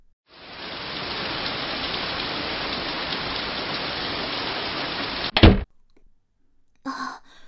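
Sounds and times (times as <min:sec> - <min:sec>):
heavy rain pouring: 0:00.3 - 0:05.6
thud: 0:05.3 - 0:05.7
breathy exhale: 0:07.1 - 0:07.4.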